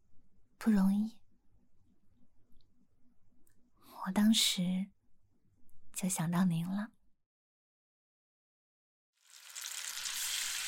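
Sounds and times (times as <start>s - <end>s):
speech: 0.6s - 1.2s, 4.1s - 5.0s, 6.0s - 7.0s
fish frying in a pan: 9.2s - 10.6s.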